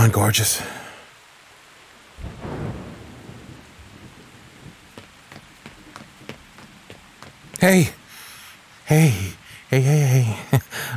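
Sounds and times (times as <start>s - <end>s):
speech: 0.0s - 0.8s, 7.6s - 8.0s, 8.9s - 10.9s
steady heavy rain hissing: 0.0s - 10.9s
deep rumble of thunder: 2.2s - 6.8s.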